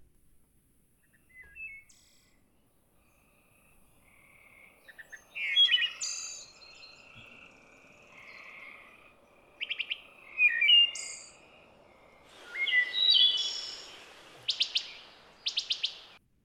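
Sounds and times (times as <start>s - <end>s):
faint birds in a forest: 0.6s - 16.2s
wood thrush singing flute-like phrases in a forest: 12.2s - 16.2s.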